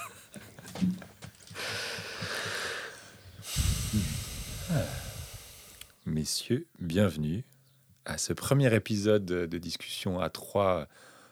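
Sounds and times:
several people at a farm taking deep breaths: 0:00.0 - 0:06.0, 0:10.9 - 0:11.2
soft vocal sounds: 0:01.6 - 0:06.1
speech: 0:06.2 - 0:07.5, 0:08.1 - 0:11.1.

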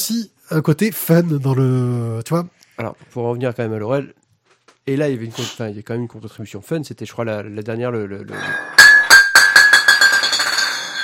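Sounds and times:
speech: 0:00.1 - 0:04.2, 0:04.8 - 0:08.8
glass bottle knocked over, falling and bouncing on a hard surface: 0:08.3 - 0:11.0.

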